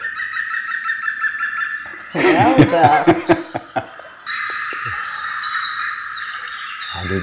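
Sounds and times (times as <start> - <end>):
dense chattering bird calls: 0.0 - 7.2
speech: 2.1 - 3.5
man exclaiming and chuckling: 2.2 - 4.0.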